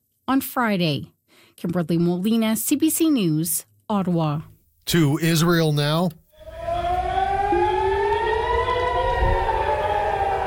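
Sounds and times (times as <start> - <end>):
speech: 0.3 - 6.2
air raid sirens wailing over Haifa, Israel, after an Iranian missile salvo: 6.3 - 10.4.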